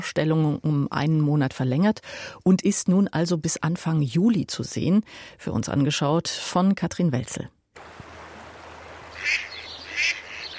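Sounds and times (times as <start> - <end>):
speech: 0.0 - 8.0
duck quacks by a riverbank: 9.1 - 10.5.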